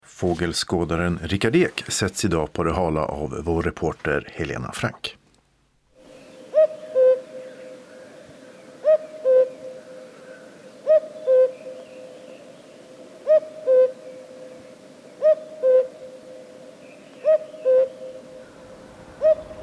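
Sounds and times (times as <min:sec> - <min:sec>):
speech: 0:00.2 - 0:05.2
common cuckoo calling its two-note cu-coo: 0:06.0 - 0:19.6.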